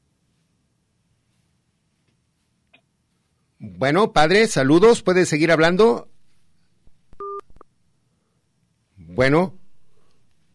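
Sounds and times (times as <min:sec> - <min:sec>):
faint hum: 0:00.0 - 0:10.5
speech: 0:03.6 - 0:06.1, 0:09.2 - 0:09.6
telephone keypad dual-pitched tone placing a call: 0:07.2 - 0:07.5.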